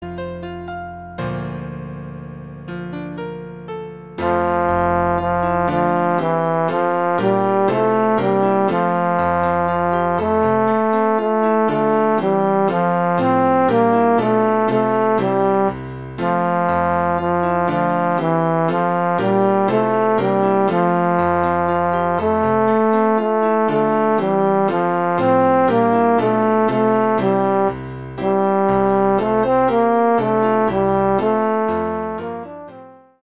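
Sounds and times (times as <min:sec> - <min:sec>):
bass: 0:00.0 - 0:33.1.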